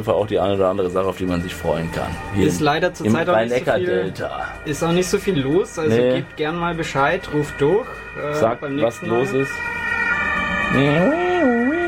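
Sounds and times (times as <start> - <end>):
speech: 0.0 - 9.8, 10.7 - 11.6
ambulance siren heard through an open window: 1.2 - 11.8.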